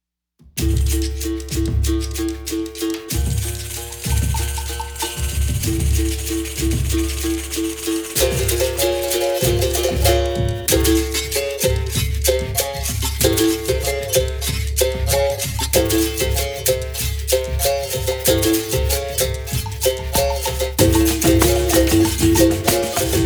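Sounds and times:
berimbau: 0:00.6 - 0:23.2.

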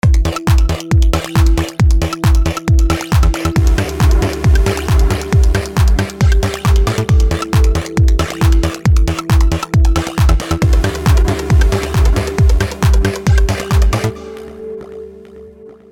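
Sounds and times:
classic trance music: 0:00.0 - 0:15.9.

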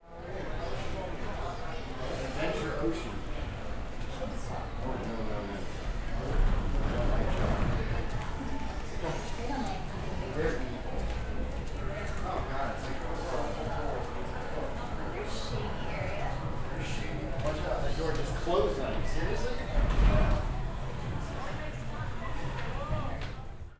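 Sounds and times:
walla talk on deck 10 of a cruise ship: 0:00.0 - 0:23.7.

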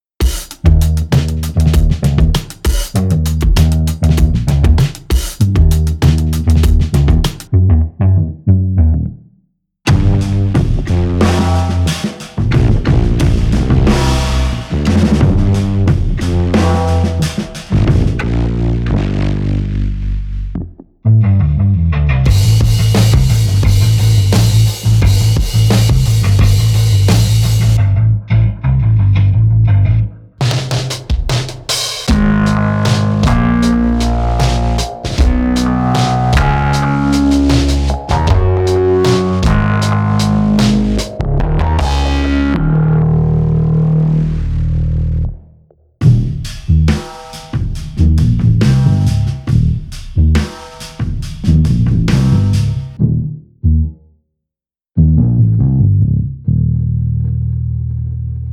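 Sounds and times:
root bass: 0:00.2 - 0:09.2, 0:09.9 - 0:54.0, 0:55.0 - 0:58.5.

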